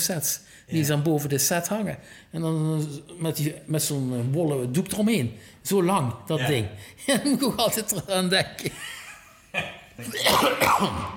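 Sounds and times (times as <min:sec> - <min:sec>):
speech: 0:00.0 - 0:11.1
person clearing throat: 0:09.6 - 0:11.1
person coughing: 0:09.6 - 0:11.1.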